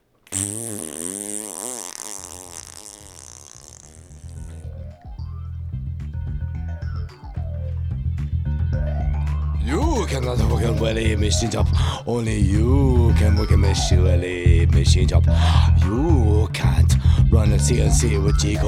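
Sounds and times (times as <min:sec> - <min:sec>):
hippo farting: 0:00.0 - 0:18.6
speech: 0:00.3 - 0:00.8, 0:10.1 - 0:18.6.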